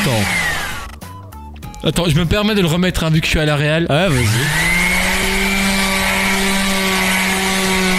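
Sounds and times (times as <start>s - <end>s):
electric sander running: 0.0s - 1.0s, 4.1s - 7.9s
speech: 1.8s - 4.8s.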